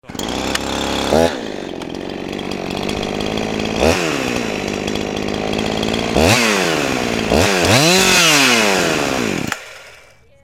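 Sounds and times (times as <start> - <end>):
Husqvarna chainsaw ringtone: 0.0 - 10.2.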